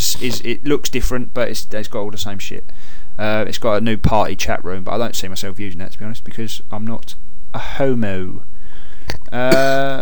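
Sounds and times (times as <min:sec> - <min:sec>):
speech: 0:00.1 - 0:10.0
person clearing throat: 0:09.4 - 0:10.0.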